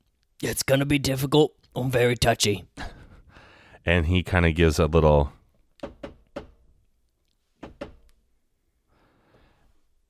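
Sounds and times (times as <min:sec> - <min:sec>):
speech: 0:00.4 - 0:02.9, 0:03.8 - 0:05.9
soft breathy exhale: 0:02.8 - 0:03.8, 0:08.9 - 0:09.8
syncopated knocking on a door: 0:05.8 - 0:06.6, 0:07.6 - 0:08.0.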